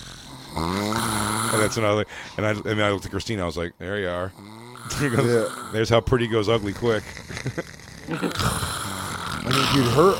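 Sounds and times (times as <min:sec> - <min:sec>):
person imitating a woman's snore: 0:00.0 - 0:01.9, 0:04.3 - 0:10.1
speech: 0:01.6 - 0:08.8, 0:09.4 - 0:10.1.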